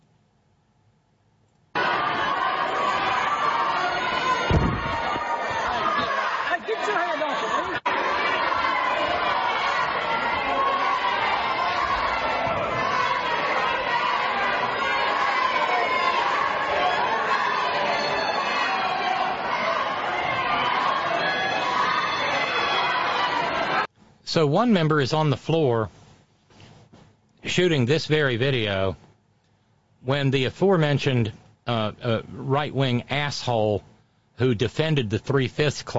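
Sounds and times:
large crowd of children shouting a chant: 1.8 - 23.9
speech: 24.4 - 26.0, 27.5 - 29.0, 30.0 - 35.9.

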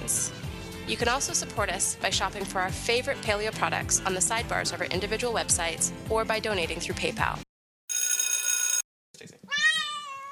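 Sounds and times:
speech: 0.9 - 7.5
steady bright ringing tone: 7.9 - 8.8
cat meowing: 9.5 - 10.3.

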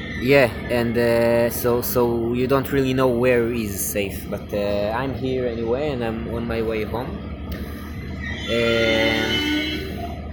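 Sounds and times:
low rumbling train machinery at a station: 0.0 - 10.3
speech: 0.2 - 7.6, 8.5 - 9.8
loud sustained horn-like train chord: 8.4 - 10.3.

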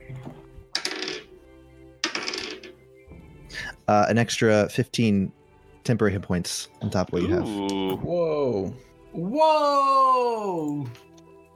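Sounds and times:
dice rolling across a hard tabletop: 0.8 - 1.3, 2.0 - 2.7
speech: 3.9 - 11.1.

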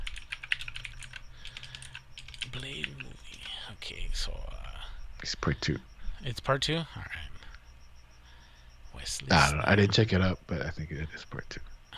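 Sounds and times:
typing on a computer keyboard: 0.0 - 3.6
speech: 2.6 - 3.0, 3.7 - 4.6, 5.2 - 7.2, 9.0 - 11.9.

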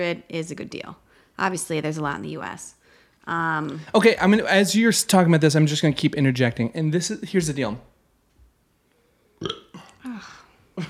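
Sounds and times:
speech: 0.0 - 7.9
loud deep croaky burps: 9.4 - 10.1.

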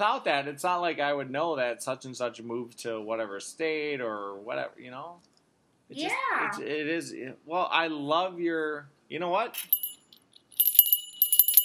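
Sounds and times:
speech: 0.0 - 5.3, 5.9 - 9.8
bright high-pitched approval bell effect: 10.6 - 11.6.

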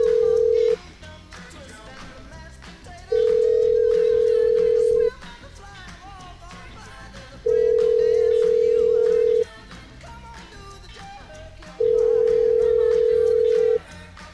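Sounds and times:
telephone ringback tone of a cell phone call: 0.0 - 0.8, 3.1 - 5.1, 7.5 - 9.4, 11.8 - 13.8
busy music-like background: 0.0 - 14.3.

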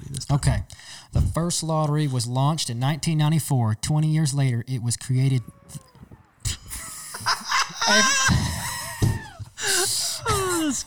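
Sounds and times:
speech: 0.3 - 5.9, 7.9 - 8.6, 10.7 - 10.8
goat screaming: 5.0 - 9.1
laughter: 5.4 - 10.8.

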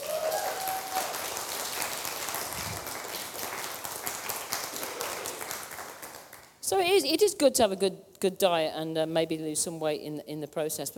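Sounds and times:
crowd applauding: 0.0 - 6.6
speech: 6.7 - 10.9.

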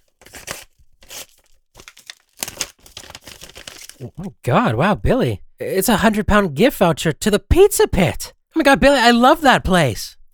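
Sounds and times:
card envelope being torn open: 0.0 - 4.2
speech: 4.0 - 10.2.

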